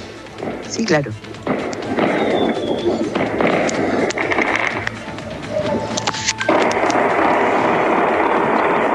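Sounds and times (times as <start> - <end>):
outdoor crowd noise: 0.0 - 8.9
fireworks bangs and pops: 0.3 - 8.9
speech: 0.4 - 1.6
gunshots: 1.4 - 4.9, 5.8 - 8.9.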